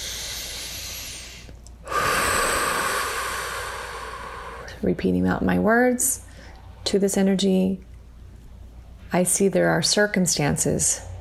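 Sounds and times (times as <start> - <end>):
deep breath inhale during a guided meditation: 0.0 - 4.8
speech: 4.8 - 6.3, 6.9 - 7.9, 9.1 - 11.1.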